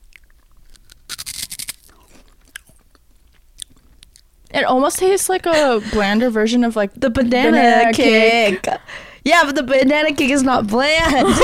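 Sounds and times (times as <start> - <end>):
biting and chewing a chocolate snack: 0.0 - 4.5
speech: 4.6 - 11.4.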